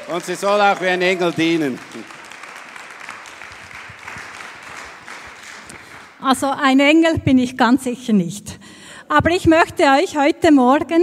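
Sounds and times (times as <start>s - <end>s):
crowd applauding a woman introduced to preach: 0.0s - 6.4s
speech: 0.1s - 2.2s, 6.2s - 11.0s.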